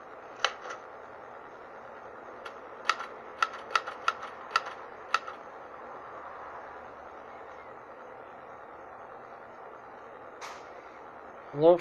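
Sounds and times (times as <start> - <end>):
faint low hum: 0.0 - 11.7
old manual non-electric typewriter key strikes: 2.8 - 5.4
speech: 11.6 - 11.7.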